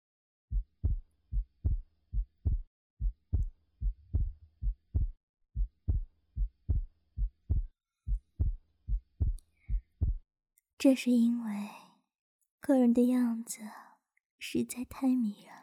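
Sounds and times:
heartbeat: 0.5 - 10.2
speech: 10.8 - 11.8, 12.7 - 15.6.

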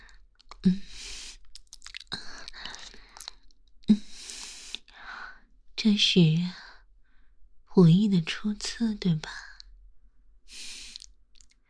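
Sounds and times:
speech: 0.6 - 1.1, 5.8 - 6.6, 7.8 - 9.4
food being chewed: 1.4 - 3.6, 10.9 - 11.6
crunchy bites: 1.5 - 3.5.

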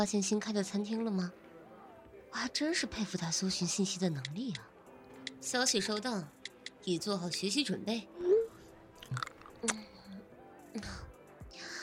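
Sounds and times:
speech: 0.0 - 1.4, 2.3 - 4.7, 5.4 - 8.3, 9.1 - 9.9, 10.8 - 11.0
crunchy bites of food: 9.0 - 9.8
squishy chewing of food: 9.0 - 10.0.

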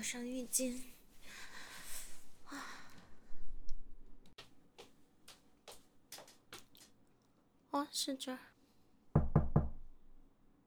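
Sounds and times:
speech: 0.0 - 1.0, 7.8 - 8.5
food delivery person knocking on a door: 9.2 - 10.0.

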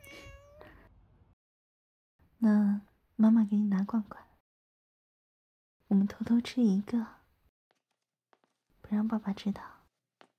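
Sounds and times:
pet cat meowing affectionately: 0.0 - 0.8
speech: 2.4 - 4.3, 5.9 - 7.2, 8.9 - 9.8.

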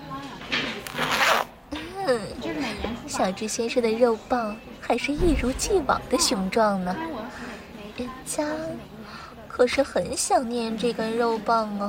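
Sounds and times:
clothing zipper being unzipped: 0.8 - 1.5
speech: 3.2 - 7.4, 8.0 - 9.0, 9.6 - 11.8.

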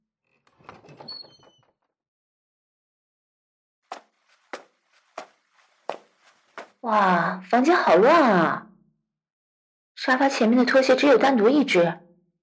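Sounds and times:
door creaking and scraping open: 0.3 - 1.9
footsteps on a hard floor: 3.9 - 6.8
speech: 6.8 - 8.7, 10.0 - 12.0.

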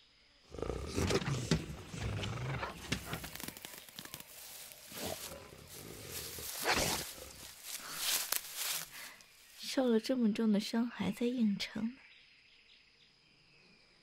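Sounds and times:
tiger roaring and growling: 0.5 - 3.8, 4.4 - 7.9
scuffling movement: 0.5 - 9.7
speech: 9.8 - 12.0.

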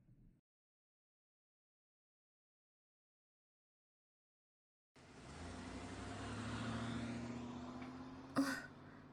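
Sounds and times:
car engine starting and revving as the car pulls away: 5.0 - 9.1.

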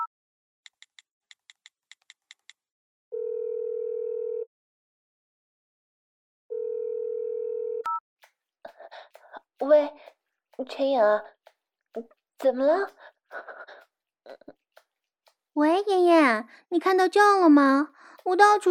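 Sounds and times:
telephone line busy tone buzzing pulses: 3.2 - 4.5, 6.5 - 8.0
faint telephone dialing beeps: 7.8 - 8.0
speech: 9.6 - 13.6, 15.6 - 18.6.

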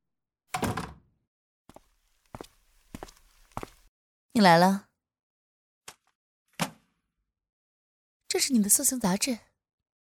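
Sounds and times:
door pushed shut with a dull thud: 0.6 - 1.0
soft footsteps: 1.7 - 3.9
speech: 4.4 - 4.9, 8.4 - 9.5.

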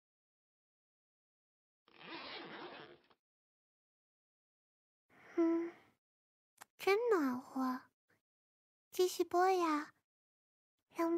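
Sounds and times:
trouser zipper being pulled down: 1.9 - 3.2
short breathy voiced sound: 5.1 - 6.0
speech: 9.0 - 10.0, 11.0 - 11.1.

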